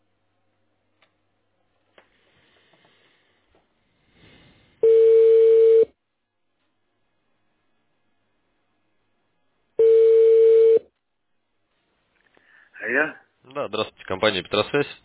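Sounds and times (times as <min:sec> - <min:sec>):
telephone ringback tone while a callback to a client connects: 0:04.8 - 0:05.9, 0:09.8 - 0:10.8
speech: 0:12.9 - 0:15.0.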